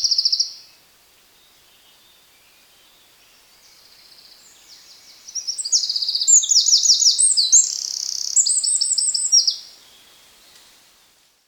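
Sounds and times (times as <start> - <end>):
Eurasian wren Troglodytes troglodytes trilling song: 0.0 - 0.6, 3.7 - 9.8.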